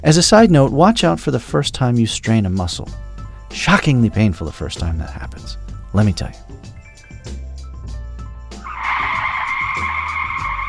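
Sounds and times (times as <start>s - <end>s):
speech: 0.0s - 6.7s
car tires skidding: 8.6s - 10.6s.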